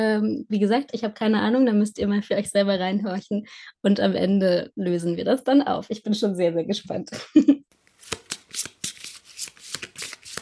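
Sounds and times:
speech: 0:00.0 - 0:08.7
tarot cards being shuffled and handled: 0:07.8 - 0:10.4.

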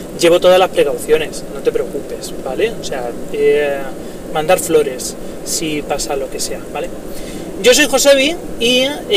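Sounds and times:
car interior road noise while driving: 0:00.0 - 0:09.1
speech: 0:00.2 - 0:09.1.

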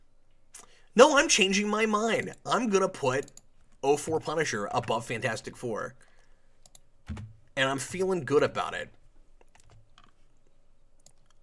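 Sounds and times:
speech: 0:01.0 - 0:06.1, 0:07.1 - 0:09.0
computer keyboard clicks while copy-pasting: 0:06.6 - 0:07.3, 0:09.4 - 0:10.2, 0:11.0 - 0:11.4.

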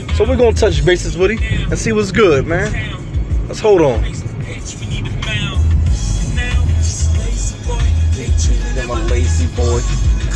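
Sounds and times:
car engine rumble while driving home: 0:00.0 - 0:10.3
speech: 0:00.2 - 0:05.1, 0:09.1 - 0:10.0.

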